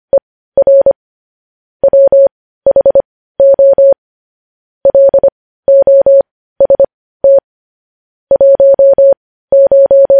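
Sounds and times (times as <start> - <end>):
Morse code beeps at a mid-high pitch: 1.8 - 4.0, 4.9 - 7.4, 8.3 - 10.1.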